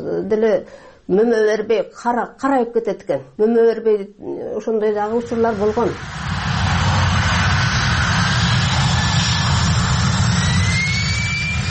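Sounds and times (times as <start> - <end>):
speech: 0.0 - 6.4
jet aircraft roaring at low altitude above a village beside an air base runway: 5.1 - 11.6.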